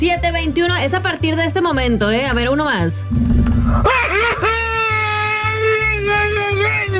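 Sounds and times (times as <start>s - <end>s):
speech: 0.0s - 4.4s
steady thumping bass beat: 2.3s - 6.9s
person giving a traditional grito yell: 3.8s - 6.9s.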